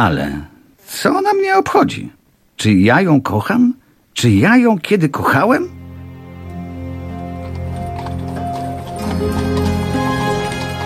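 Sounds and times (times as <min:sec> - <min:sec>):
speech: 0:00.0 - 0:05.8
horses' hooves clip-clopping beneath a horse-drawn carriage: 0:06.4 - 0:10.8.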